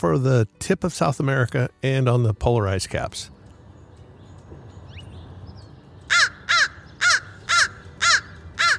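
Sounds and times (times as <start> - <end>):
speech: 0.0 - 3.4
crow cawing: 6.1 - 8.7.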